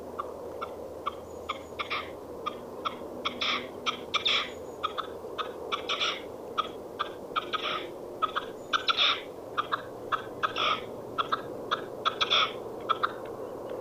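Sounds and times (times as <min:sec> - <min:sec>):
Red-legged partridge harsh chuffing calls: 0:00.2 - 0:13.2.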